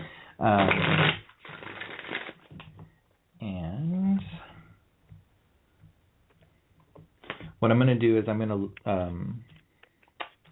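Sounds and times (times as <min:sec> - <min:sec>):
speech: 0:00.4 - 0:01.0, 0:07.7 - 0:09.5
tarot cards being shuffled for a reading: 0:00.6 - 0:02.7.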